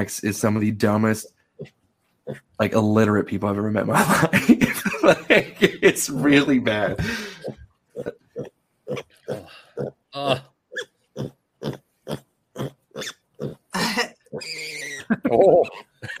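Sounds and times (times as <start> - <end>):
speech: 0.0 - 8.2, 10.2 - 10.5, 15.3 - 15.8
laughter: 3.9 - 7.5, 15.0 - 16.1
pig grunting: 6.2 - 16.1
pig snorting squeals: 7.4 - 15.9.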